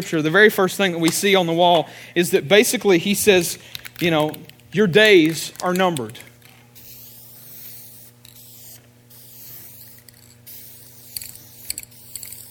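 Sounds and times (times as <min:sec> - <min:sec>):
speech: 0:00.0 - 0:06.3
low electrical hum: 0:00.0 - 0:12.5
spray paint can spraying: 0:06.8 - 0:12.5.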